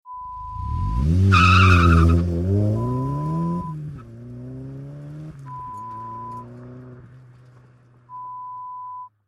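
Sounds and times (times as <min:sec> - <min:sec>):
car pulling away: 0:00.2 - 0:08.6.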